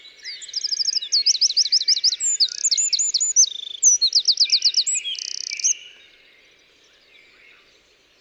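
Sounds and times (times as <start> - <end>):
Eurasian wren Troglodytes troglodytes singing: 0.3 - 5.8.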